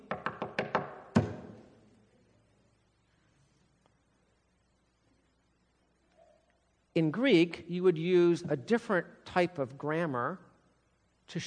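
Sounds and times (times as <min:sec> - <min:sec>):
knocking on a hollow wooden pulpit: 0:00.0 - 0:01.4
speech: 0:07.0 - 0:10.5, 0:11.3 - 0:11.4.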